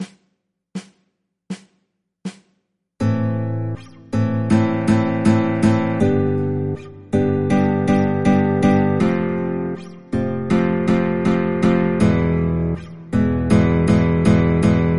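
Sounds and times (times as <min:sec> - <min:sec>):
flamenco chord progressions on guitar: 0:03.0 - 0:14.9.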